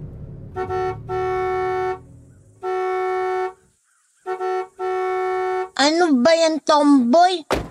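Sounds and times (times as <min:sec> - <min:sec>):
car horn honking: 0:00.4 - 0:05.8
speech: 0:00.5 - 0:01.1, 0:05.8 - 0:07.6.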